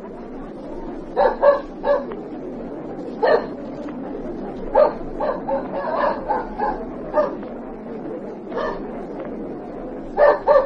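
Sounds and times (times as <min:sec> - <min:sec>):
tracking dog barking while circling a line of suspects: 0:01.2 - 0:02.2, 0:03.2 - 0:03.6, 0:04.7 - 0:07.4, 0:08.5 - 0:08.8, 0:10.2 - 0:10.6.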